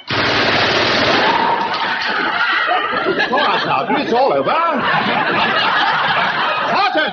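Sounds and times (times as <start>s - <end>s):
machine gun firing a sustained burst: 0.0s - 1.9s
laughter: 1.6s - 7.1s
speech: 3.7s - 5.8s.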